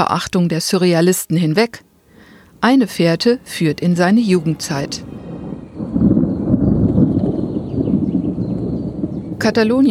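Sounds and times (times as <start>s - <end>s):
speech: 0.0s - 1.9s, 2.6s - 5.3s, 9.4s - 9.8s
rolling thunder in a summer thunderstorm on the Mediterranean coast of Catalonia: 3.4s - 9.8s.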